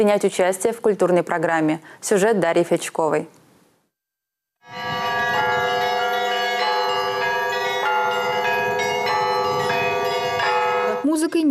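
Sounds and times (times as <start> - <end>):
speech: 0.0 - 3.4
church bells ringing for town birthday celebration in Yugorsk: 4.6 - 11.2.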